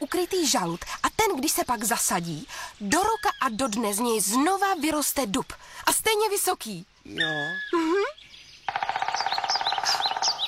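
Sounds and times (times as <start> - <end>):
speech: 0.1 - 9.0
woodpecker calling in a fast rattling series: 1.4 - 5.0, 7.2 - 10.4.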